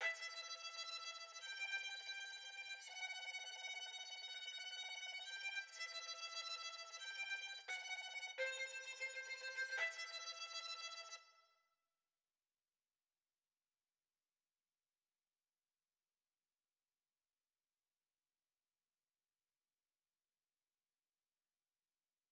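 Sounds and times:
string music in E minor at 86 BPM: 0:00.0 - 0:11.5.

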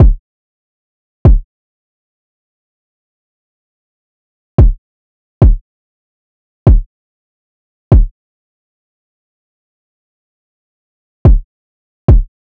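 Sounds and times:
trap drum loop with kick at 144 BPM: 0:00.0 - 0:00.2, 0:04.6 - 0:04.8, 0:06.7 - 0:06.9, 0:07.9 - 0:08.1, 0:12.1 - 0:12.3.

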